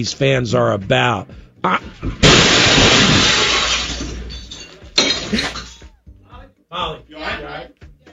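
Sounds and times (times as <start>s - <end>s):
speech: 0.0s - 3.3s
debris tumbling: 2.0s - 5.4s
glass shattering: 2.0s - 5.8s
car crashing through a wall: 2.2s - 4.4s.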